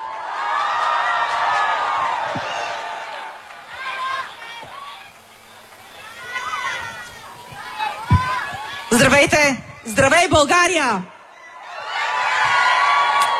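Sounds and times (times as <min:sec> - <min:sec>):
big crowd in an open square clapping: 0:00.0 - 0:09.1, 0:12.6 - 0:13.3
many voices shouting and whooping: 0:00.0 - 0:09.9, 0:11.3 - 0:13.3
speech: 0:09.0 - 0:11.1.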